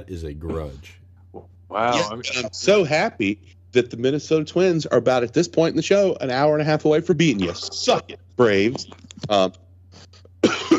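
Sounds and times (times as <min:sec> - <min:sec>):
speech: 0:00.0 - 0:10.1
low steady hum: 0:00.0 - 0:10.7
person coughing: 0:10.1 - 0:10.7.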